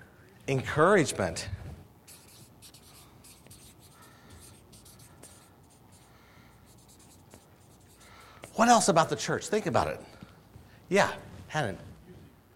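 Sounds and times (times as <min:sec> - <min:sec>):
speech: 0:00.5 - 0:01.6, 0:08.6 - 0:10.1, 0:10.9 - 0:11.9
pen scratching across a surface: 0:02.1 - 0:08.8.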